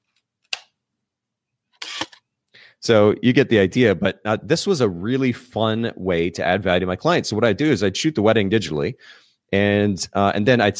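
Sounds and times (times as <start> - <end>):
35mm film camera shutter firing at fast speed: 1.8 - 2.2
speech: 2.8 - 10.7.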